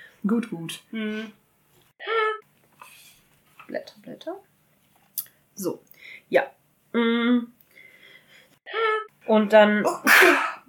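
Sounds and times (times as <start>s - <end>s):
speech: 0.2s - 1.4s, 3.7s - 4.5s, 5.6s - 7.6s, 8.7s - 10.5s
person sneezing: 9.9s - 10.6s.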